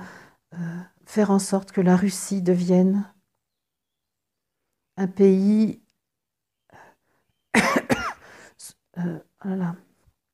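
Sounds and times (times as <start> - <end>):
speech: 1.1 - 3.2, 5.0 - 5.8, 9.0 - 9.8
person coughing harshly: 7.5 - 8.3
person clearing throat: 7.6 - 8.2.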